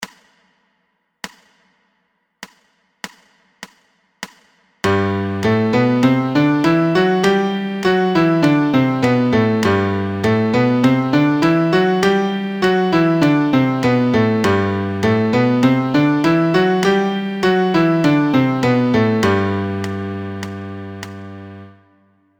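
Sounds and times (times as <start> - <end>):
MIDI major scale in G: 4.9 - 22.3.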